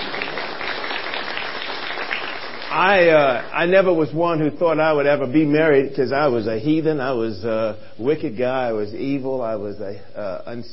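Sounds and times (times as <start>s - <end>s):
audience applause: 0.0s - 3.6s
speech: 2.8s - 10.7s.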